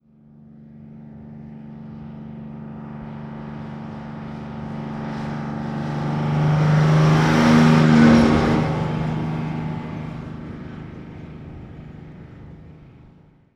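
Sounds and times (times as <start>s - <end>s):
1948 diesel truck passing by: 4.1s - 13.3s.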